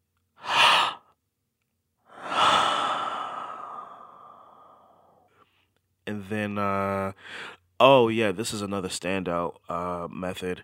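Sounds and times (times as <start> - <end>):
longer airy human breath: 0.4 - 1.1, 2.1 - 5.5
short sharp human inhale: 0.4 - 1.1, 2.1 - 5.6
speech: 6.2 - 10.6.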